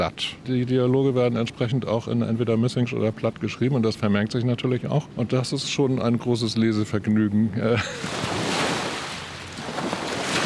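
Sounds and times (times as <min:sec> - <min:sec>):
speech: 0:00.1 - 0:08.5
river waves washing onto a beach on the Elbe: 0:08.0 - 0:10.4.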